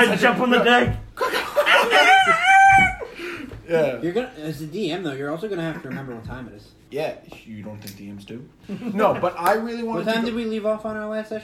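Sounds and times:
speech: 0.0 - 2.4, 3.7 - 11.4
laughter: 0.0 - 3.6, 5.5 - 6.5, 8.6 - 9.6
person imitating a rooster crow with a hint of laughter: 1.9 - 3.0.

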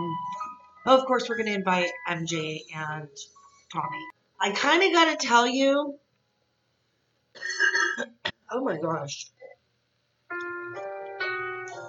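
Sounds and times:
speech: 0.8 - 6.0, 7.4 - 9.4
person coughing into microphone: 7.4 - 8.4.

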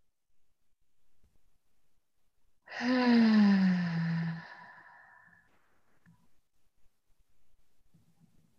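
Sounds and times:
deep inhale during a guided breathing exercise: 2.7 - 5.6.

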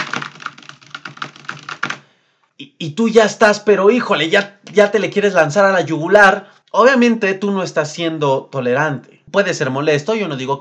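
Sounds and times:
rapid typing on a computer keyboard: 0.0 - 2.0
speech: 2.8 - 10.5.

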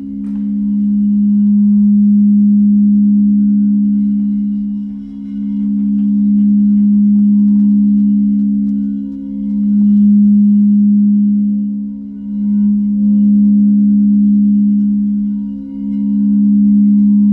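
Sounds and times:
crystal bowls singing in a low sustained drone: 0.0 - 17.3
faint higher overtones of crystal bowls: 0.0 - 17.3.

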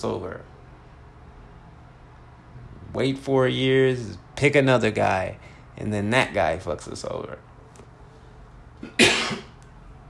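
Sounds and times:
speech: 0.0 - 0.6, 2.9 - 7.5, 8.8 - 9.5
single harsh explosive cough: 8.8 - 9.6.

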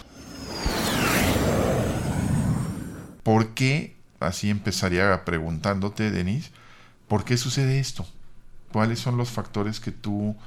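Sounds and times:
spaceship takeoff roar: 0.0 - 3.2
whistling tones sweeping downward: 0.0 - 3.2
speech: 3.3 - 10.4.

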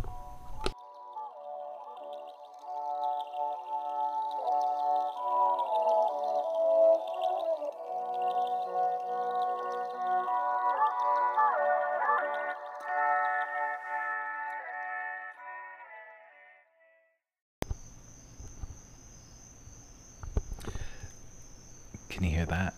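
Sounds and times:
steady tonal music: 0.0 - 16.0
chorus of crickets chirping outdoors: 0.1 - 14.1, 17.6 - 22.7.

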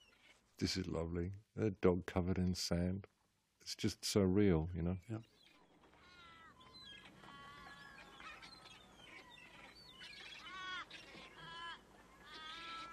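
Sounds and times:
speech: 0.6 - 5.3
seagulls calling along a sandy bay shore: 5.3 - 12.9.

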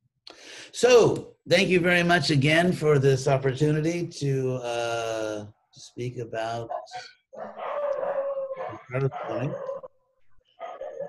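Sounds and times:
speech: 0.7 - 7.6, 8.9 - 9.7
dog howling and barking: 6.7 - 9.9, 10.6 - 11.0.

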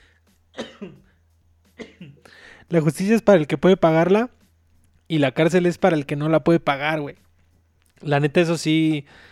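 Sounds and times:
person coughing after choking on water: 0.6 - 2.3
speech: 0.8 - 1.0, 2.7 - 4.4, 5.1 - 7.2, 8.0 - 9.3.

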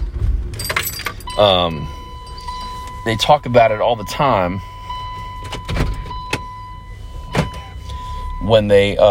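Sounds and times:
car engine starting and idling: 0.0 - 9.0
keys jingling: 0.5 - 1.4
thin continuous chime tone: 0.6 - 9.0
speech: 1.4 - 2.0, 3.1 - 4.7, 8.5 - 9.0.

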